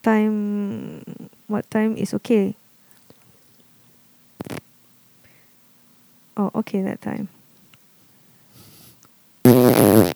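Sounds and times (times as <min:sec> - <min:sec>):
speech: 0:00.0 - 0:00.9, 0:01.5 - 0:02.6, 0:06.4 - 0:07.4
man farting: 0:04.4 - 0:04.6, 0:09.5 - 0:10.1.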